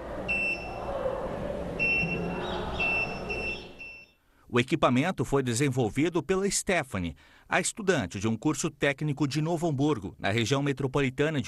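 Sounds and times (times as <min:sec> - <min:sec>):
small electronic firefighter locator alarm beeping: 0:00.3 - 0:00.9, 0:01.8 - 0:04.2
speech: 0:04.5 - 0:11.4.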